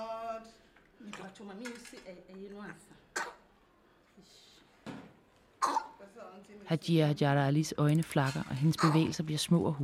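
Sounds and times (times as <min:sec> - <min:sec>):
speech: 0:01.3 - 0:03.3, 0:04.2 - 0:04.5, 0:06.0 - 0:09.8
newborn baby coughing: 0:03.1 - 0:03.5, 0:05.6 - 0:06.0, 0:08.7 - 0:09.2.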